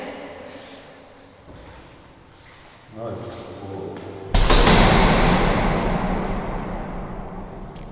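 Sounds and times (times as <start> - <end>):
door slamming shut in a reverberation room: 4.4 - 7.9.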